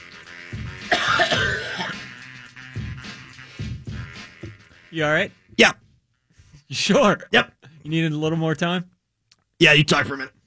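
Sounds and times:
person clearing throat: 0.9 - 2.1
speech: 5.0 - 5.8, 6.7 - 8.9, 9.6 - 10.4.

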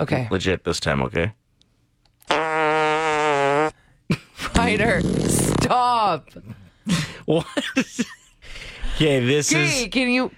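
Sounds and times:
speech: 0.0 - 1.4, 4.7 - 10.3
fart: 2.2 - 3.8, 4.6 - 5.7.

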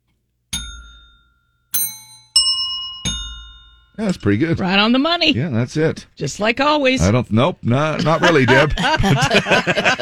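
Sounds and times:
bell strikes at slightly different pitches: 0.5 - 4.3
speech: 4.0 - 9.9
laughter: 7.9 - 9.9.

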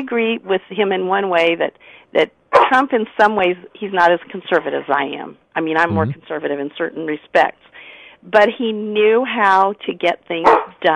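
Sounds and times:
speech: 0.0 - 10.9
dog barking: 10.4 - 10.8.

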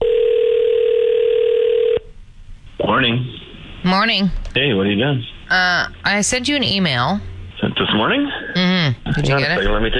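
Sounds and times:
telephone dial tone through a phone line: 0.0 - 2.0
speech: 3.0 - 9.9.

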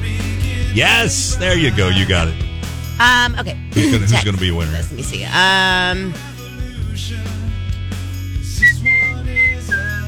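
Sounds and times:
steady music: 0.0 - 10.0
laughter: 0.8 - 2.3, 3.0 - 5.8
speech: 0.8 - 6.3
person whistling a short melody: 8.6 - 10.0.

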